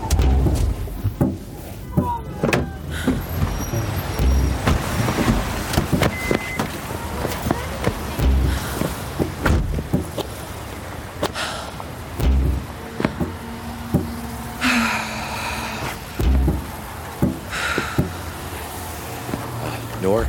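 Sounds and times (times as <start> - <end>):
sharp clunks and rattles: 0.0 - 10.3, 12.2 - 14.3, 16.2 - 18.2
car pulling over and stopping with low engine and road noise: 0.0 - 20.2.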